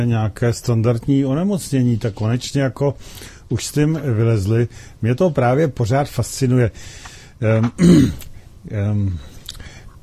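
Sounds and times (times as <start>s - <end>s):
speech: 0.0s - 9.3s
person with a slight cough clearing their throat: 7.7s - 8.3s
person with a slight cough: 7.8s - 8.3s.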